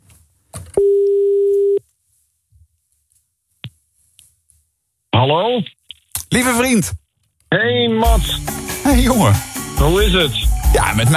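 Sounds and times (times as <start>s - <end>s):
telephone ringback tone while placing a call: 0.8s - 1.8s
speech: 5.3s - 11.1s.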